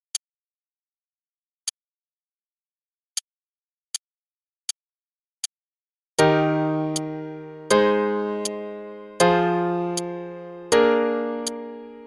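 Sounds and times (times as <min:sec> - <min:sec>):
chord progression in E-flat major: 0:06.2 - 0:12.0.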